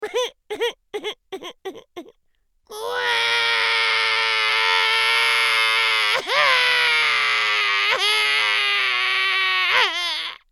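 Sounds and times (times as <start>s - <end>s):
cartoon crying: 2.7s - 10.4s.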